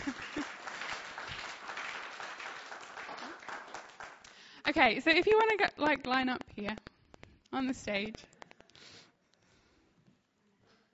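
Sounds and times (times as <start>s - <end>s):
audience clapping: 0.0s - 5.7s
speech: 4.7s - 6.8s, 7.5s - 8.9s.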